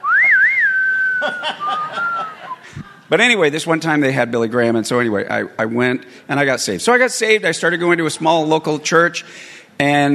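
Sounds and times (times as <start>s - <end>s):
person whistling a spaghetti western style tune: 0.0s - 2.8s
speech: 1.2s - 2.1s, 3.1s - 10.1s
soft breathy chuckles: 1.2s - 3.1s.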